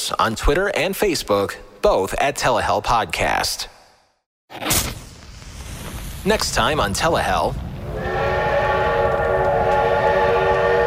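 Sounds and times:
speech: 0:00.1 - 0:03.8, 0:04.5 - 0:05.0, 0:06.2 - 0:08.3
train rolling and rumbling: 0:05.9 - 0:10.8
train whistle blowing: 0:07.9 - 0:10.8.

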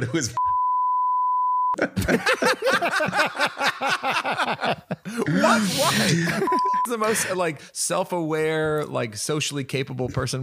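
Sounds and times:
speech: 0:00.0 - 0:00.4, 0:01.8 - 0:10.4
censor beep over a name: 0:00.4 - 0:01.8
people talking and laughing over one another: 0:01.9 - 0:07.6.

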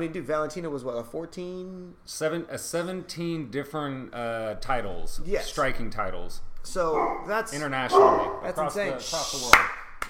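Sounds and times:
speech: 0:00.0 - 0:10.0
dog barking: 0:07.0 - 0:07.3, 0:07.9 - 0:08.5.

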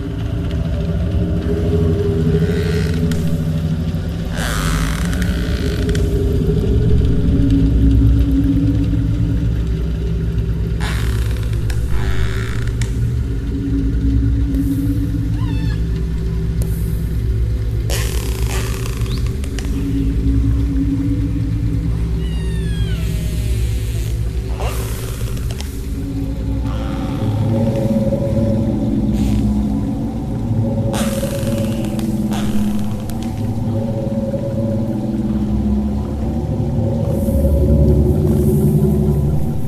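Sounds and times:
steady layered low drone from granular synthesis of whale song: 0:00.0 - 0:39.6.

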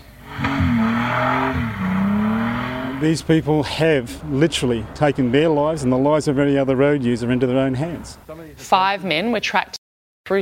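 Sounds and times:
tire squeal of a car spinning out of control: 0:00.0 - 0:06.0
car engine roaring during a hooning stunt on the Sunshine Coast: 0:00.0 - 0:08.3
speech: 0:03.0 - 0:10.4.

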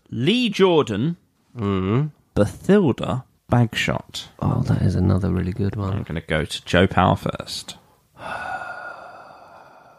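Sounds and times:
speech: 0:00.2 - 0:08.6
heavy exhale: 0:08.2 - 0:09.9.

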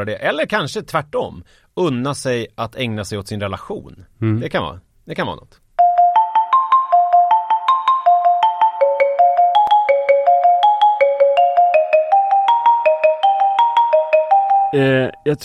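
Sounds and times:
speech: 0:00.0 - 0:05.6, 0:14.7 - 0:15.4
telephone ringing electronic melody while a call is placed: 0:05.8 - 0:14.9.

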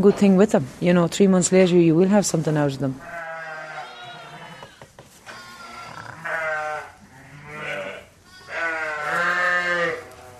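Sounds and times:
speech: 0:00.0 - 0:03.2
ewes bleating in sheep shed: 0:03.0 - 0:10.3.

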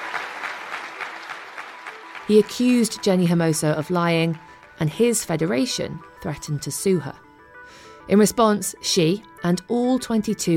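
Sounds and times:
large crowd applauding at an assembly meeting: 0:00.0 - 0:03.4
speech: 0:02.3 - 0:10.5.

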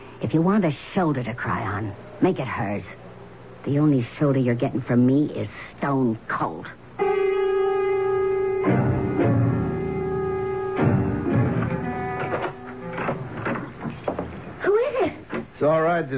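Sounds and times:
speech: 0:00.3 - 0:03.0, 0:03.6 - 0:06.8, 0:15.6 - 0:16.1
steady low humming drone: 0:07.0 - 0:13.9
door being opened with solid clunks and rattling knocks: 0:10.8 - 0:14.6.

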